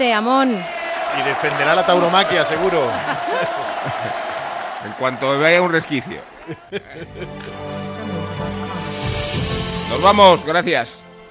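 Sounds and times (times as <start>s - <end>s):
speech: 0.0s - 7.7s, 9.9s - 11.0s
studio audience applause: 0.4s - 8.9s
laughter: 1.0s - 8.9s.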